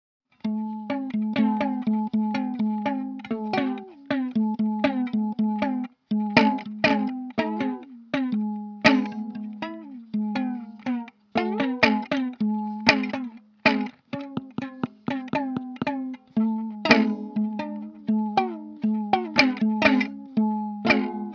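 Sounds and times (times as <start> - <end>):
guitar on a train: 0.3 - 21.3.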